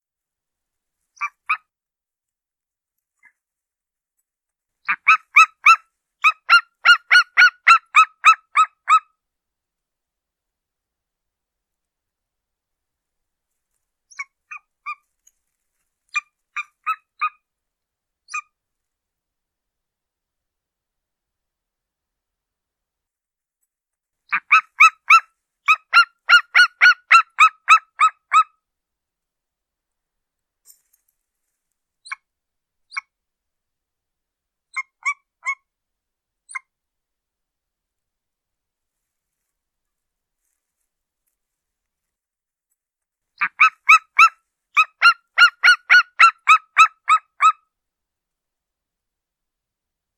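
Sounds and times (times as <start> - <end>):
golden eagle calling: 4.9 - 9.0, 24.3 - 28.4, 43.4 - 47.5.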